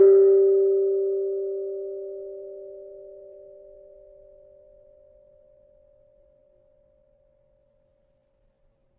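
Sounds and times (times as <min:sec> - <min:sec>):
kenong gong in G: 0:00.0 - 0:06.9.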